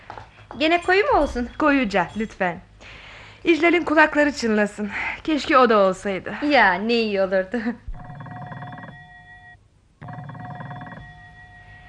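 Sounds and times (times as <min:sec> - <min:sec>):
speech: 0:00.6 - 0:07.8
telephone ringing with electronic trill: 0:08.0 - 0:11.8.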